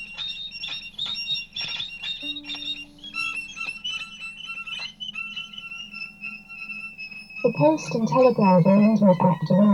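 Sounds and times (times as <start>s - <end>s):
lower steady tone: 2.2s - 9.7s
high electronic amateur radio signal beeps and warbling tones: 7.4s - 9.7s
speech: 7.5s - 9.7s.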